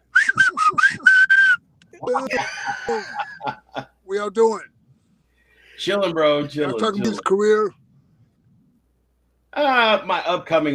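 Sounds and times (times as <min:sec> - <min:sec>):
shrill whistle blasts: 0:00.1 - 0:01.7
laughter: 0:02.0 - 0:04.0
speech: 0:02.1 - 0:04.7, 0:05.8 - 0:07.8, 0:09.6 - 0:10.7.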